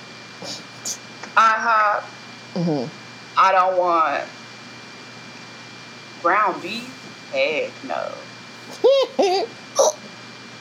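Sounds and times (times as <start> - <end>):
speech: 0.4 - 4.4, 6.2 - 10.0
voiced hiccups: 9.8 - 10.0.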